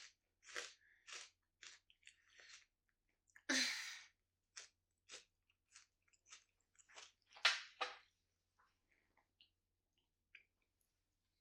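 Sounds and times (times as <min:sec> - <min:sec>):
person chewing a crisp bar snack: 0:00.0 - 0:08.1.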